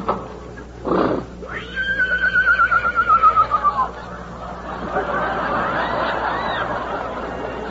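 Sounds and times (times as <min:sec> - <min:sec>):
horse snorting: 0:00.8 - 0:01.4
horse whinnying: 0:00.9 - 0:03.9
laughter: 0:03.1 - 0:07.6.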